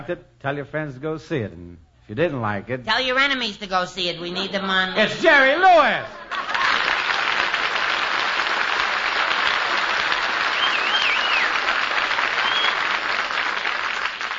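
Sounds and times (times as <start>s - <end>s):
speech: 0.0s - 6.2s
laughter: 4.3s - 7.5s
audience applause: 6.2s - 14.3s
whistle or cheer from audience: 10.4s - 13.0s.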